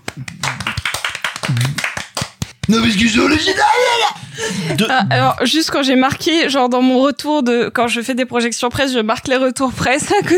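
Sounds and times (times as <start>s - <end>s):
hand clapping: 0.0s - 3.0s
speech: 2.7s - 10.3s.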